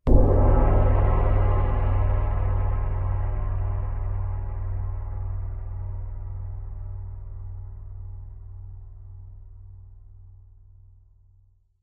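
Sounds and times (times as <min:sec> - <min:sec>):
gong hit: 0:00.1 - 0:08.0.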